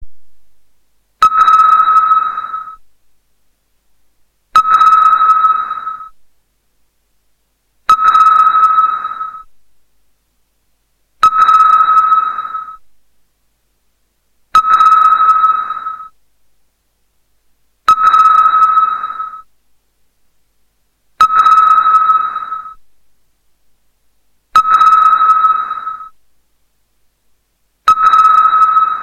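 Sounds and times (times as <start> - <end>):
sonar radar: 1.2 - 2.9, 4.5 - 6.2, 7.8 - 9.6, 11.2 - 12.9, 14.5 - 16.2, 17.8 - 19.6, 21.2 - 22.9, 24.5 - 26.2, 27.8 - 29.0.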